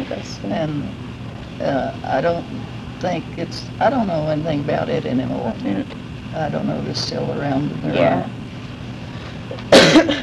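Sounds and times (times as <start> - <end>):
speech: 0.1 - 8.4
person coughing: 9.7 - 10.2.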